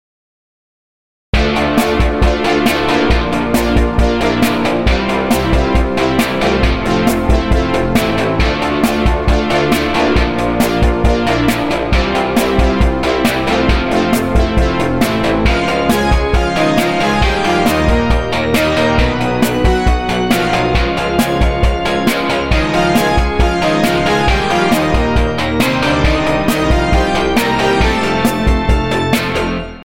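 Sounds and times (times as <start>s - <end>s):
electric guitar song: 1.4s - 29.8s.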